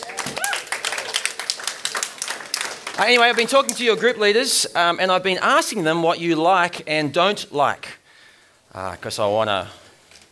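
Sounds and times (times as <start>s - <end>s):
small audience at a talk clapping for the group leaders: 0.0s - 4.5s
speech: 3.0s - 8.0s, 8.7s - 9.8s.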